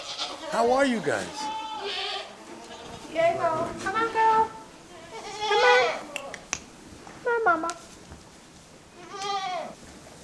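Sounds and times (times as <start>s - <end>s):
goat bleating: 0.0s - 6.4s, 8.9s - 9.8s
speech: 0.5s - 2.0s, 3.1s - 4.6s, 7.4s - 7.9s
low hum: 1.5s - 10.2s.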